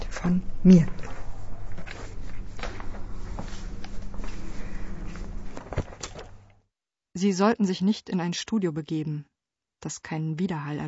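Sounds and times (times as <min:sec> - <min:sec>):
steady low hum: 0:00.0 - 0:06.6
speech: 0:00.2 - 0:01.0, 0:07.2 - 0:10.8
faint distant footsteps on a hard corridor floor: 0:00.8 - 0:06.5.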